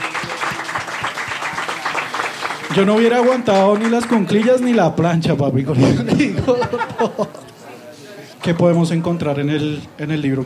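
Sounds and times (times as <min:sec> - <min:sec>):
audience applause: 0:00.0 - 0:04.9
speech: 0:02.8 - 0:07.4, 0:08.4 - 0:10.4
laughter: 0:05.7 - 0:07.7.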